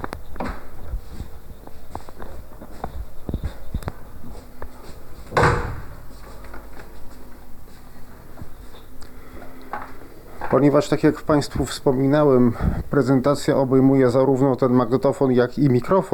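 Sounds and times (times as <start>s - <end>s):
footsteps entering room: 0.0s - 13.0s
quieter shuffling: 0.0s - 13.1s
solid door thud: 5.3s - 6.0s
speech: 10.6s - 16.1s.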